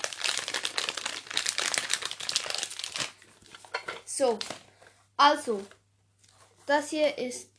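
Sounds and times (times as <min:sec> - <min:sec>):
plastic pack crinkling as fluffy slime is pressed onto it: 0:00.0 - 0:04.8
speech: 0:04.2 - 0:04.6, 0:05.2 - 0:05.8, 0:06.7 - 0:07.5.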